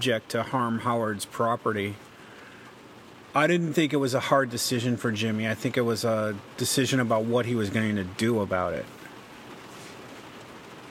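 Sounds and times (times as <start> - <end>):
speech: 0.0 - 2.1, 3.4 - 9.0
rain pattering on the roof of a parked van used as a mobile studio: 0.0 - 10.8.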